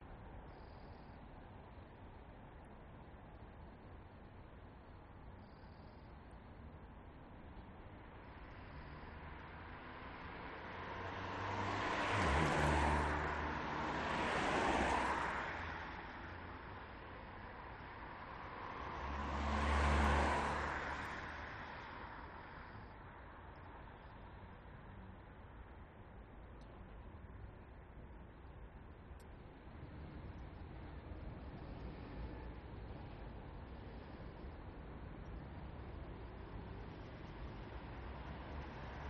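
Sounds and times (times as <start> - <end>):
urban traffic on wet road in Newcastle upon Tyne UK: 7.9 - 24.8, 29.2 - 39.0.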